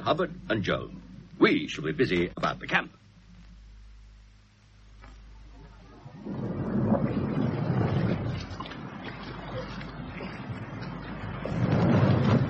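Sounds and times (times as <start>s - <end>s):
speech: 0.0s - 3.0s
small boat churning and splashing across water: 5.7s - 12.4s.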